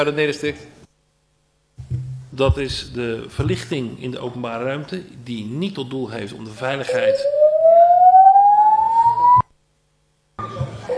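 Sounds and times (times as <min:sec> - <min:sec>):
speech: 0:00.0 - 0:00.8, 0:02.4 - 0:07.4
building fire alarm sounding a rising whoop tone: 0:06.8 - 0:09.5, 0:10.4 - 0:10.9.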